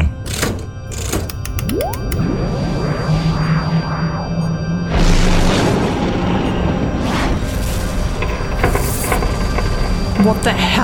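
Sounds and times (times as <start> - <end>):
sweeping warbling electronic tones: 1.3 - 7.8
passing energy-beam shot: 1.5 - 8.0
sci-fi warship cannon blast striking a spaceship: 4.8 - 8.2
booming impact on a spaceship: 4.9 - 10.2
speech: 10.3 - 10.8.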